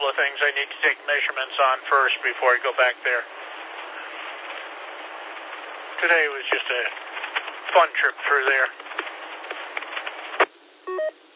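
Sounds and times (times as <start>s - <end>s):
speech: 0.2s - 3.5s, 6.0s - 8.8s
sharp click on incoming phone call line: 10.9s - 11.1s
two-step electronic phone tone: 10.9s - 11.2s.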